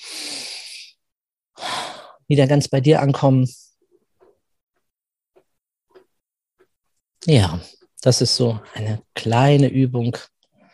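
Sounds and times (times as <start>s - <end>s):
deep breath out during a guided exercise: 0.0s - 1.0s, 1.6s - 2.2s
speech: 2.3s - 3.6s, 7.2s - 10.3s.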